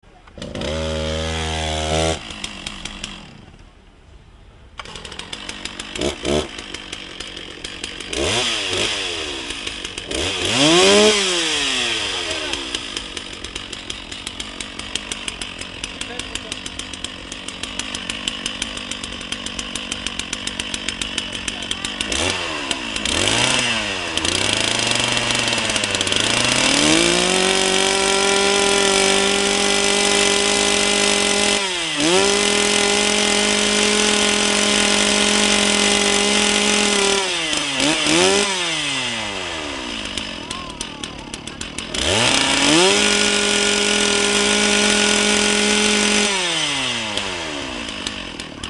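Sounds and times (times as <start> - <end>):
chainsaw: 0.0 - 3.8, 4.8 - 48.6.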